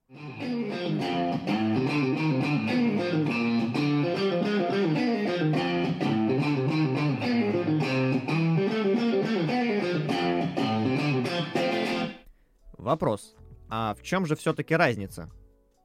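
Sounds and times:
distorted electric guitar with body made from iPhones playing a riff: 0:00.1 - 0:12.3
speech: 0:00.4 - 0:03.8, 0:12.9 - 0:15.5.

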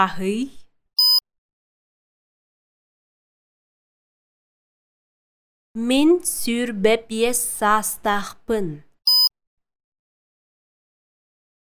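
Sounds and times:
speech: 0:00.0 - 0:00.6, 0:05.8 - 0:08.9
short electronic beep in a language lesson: 0:01.0 - 0:01.2, 0:09.1 - 0:09.3.

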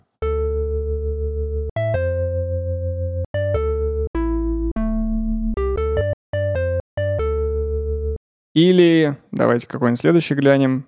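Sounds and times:
Roland Jupiter-8 synthesizer playing its Bell Organ preset melody: 0:00.2 - 0:08.2
speech: 0:08.6 - 0:10.8.

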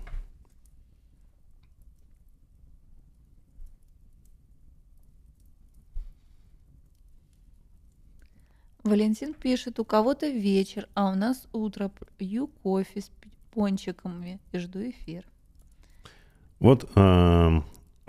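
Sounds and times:
fireplace crackling: 0:00.0 - 0:18.0
speech: 0:08.8 - 0:15.3, 0:16.6 - 0:18.0.

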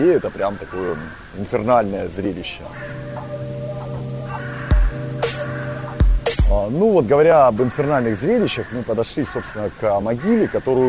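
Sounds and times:
speech: 0:00.0 - 0:03.5, 0:06.5 - 0:10.8
crows cawing: 0:00.0 - 0:10.8
steady low hum: 0:02.7 - 0:06.8.

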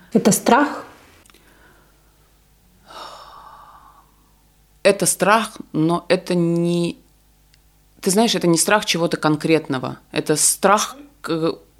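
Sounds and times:
speech: 0:00.1 - 0:00.9, 0:04.9 - 0:07.0, 0:08.0 - 0:11.7
person imitating panicked heavy breathing: 0:01.4 - 0:02.2, 0:02.8 - 0:04.3.

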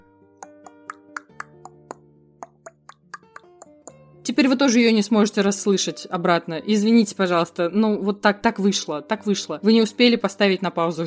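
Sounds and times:
voice imitating the throaty clicking of a zombie clicker: 0:00.4 - 0:04.0
speech: 0:04.2 - 0:11.0.

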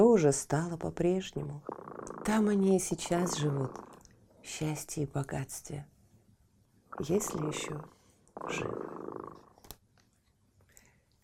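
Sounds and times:
quiet hiss: 0:00.0 - 0:11.2
speech: 0:00.2 - 0:05.9, 0:07.0 - 0:09.0
cat purring softly: 0:01.4 - 0:04.1, 0:07.0 - 0:09.6.

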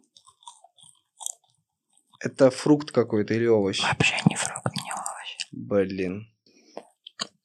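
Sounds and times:
bread being bitten and chewed: 0:00.0 - 0:02.2
speech: 0:02.2 - 0:04.6, 0:05.7 - 0:06.3.

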